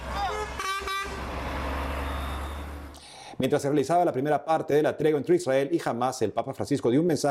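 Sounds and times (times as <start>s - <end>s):
aid truck horn blasts: 0.0s - 2.9s
aid truck heavy engines idling and moving: 0.0s - 3.3s
speech: 3.4s - 7.3s.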